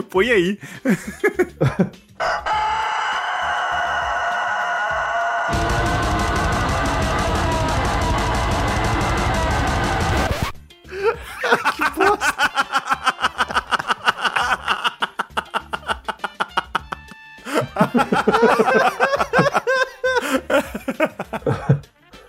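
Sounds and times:
people laughing: 0:00.6 - 0:02.0, 0:10.9 - 0:21.9
rooster crowing: 0:02.2 - 0:10.2
loud dense distorted black metal music: 0:05.5 - 0:21.7.

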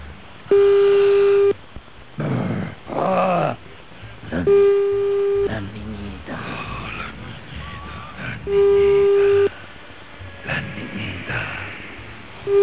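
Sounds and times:
phone ringback tone of an unanswered call: 0:00.5 - 0:01.6, 0:04.5 - 0:05.5, 0:08.5 - 0:09.5, 0:12.5 - 0:12.6
people talking: 0:02.2 - 0:03.6, 0:04.2 - 0:04.7, 0:05.3 - 0:09.5, 0:10.4 - 0:12.6.

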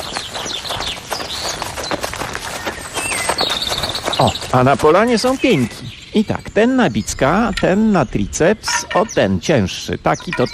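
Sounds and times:
quick running footsteps on forest ground near Warsaw: 0:00.0 - 0:07.6
speech: 0:04.2 - 0:10.5.

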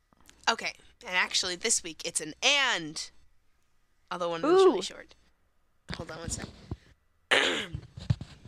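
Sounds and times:
speech: 0:00.5 - 0:03.2, 0:04.1 - 0:05.2, 0:05.9 - 0:06.6
woman clearing her throat: 0:07.3 - 0:07.8.

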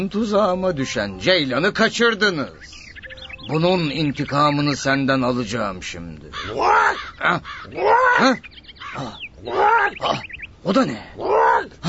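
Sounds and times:
speech: 0:00.0 - 0:02.8, 0:03.4 - 0:11.8
crow cawing: 0:06.3 - 0:10.4.

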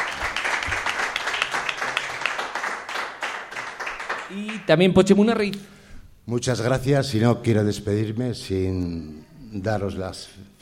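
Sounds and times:
audience applause at a local celebration in Tudela: 0:00.0 - 0:04.8
speech: 0:04.3 - 0:10.5.

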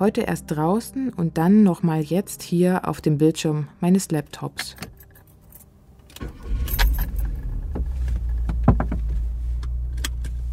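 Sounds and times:
speech: 0:00.0 - 0:04.9
car engine rumble during a ride: 0:05.9 - 0:10.5.

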